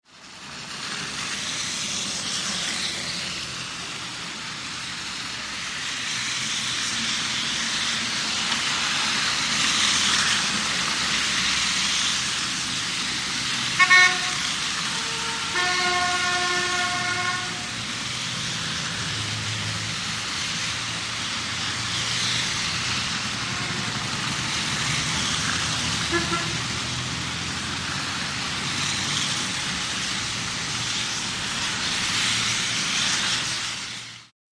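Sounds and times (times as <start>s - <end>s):
city traffic driving in slush: 0.0s - 34.3s
car horns in city traffic: 13.7s - 17.7s, 23.4s - 24.2s, 26.1s - 26.7s.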